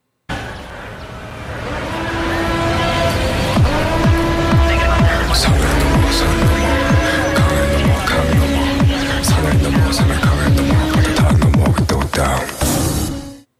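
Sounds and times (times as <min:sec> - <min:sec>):
passing cars on a city street: 0:00.3 - 0:13.2
tonal hums: 0:01.5 - 0:11.8
rhythmic clicks: 0:03.6 - 0:12.7.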